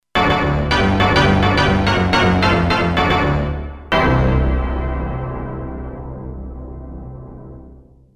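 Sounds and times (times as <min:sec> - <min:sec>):
organ hit: 0:00.2 - 0:05.7.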